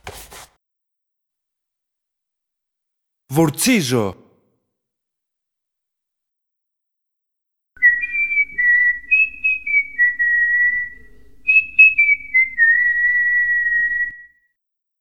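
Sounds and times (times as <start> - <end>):
speech: 3.3 - 4.2
person whistling a short melodic tune: 7.8 - 14.3.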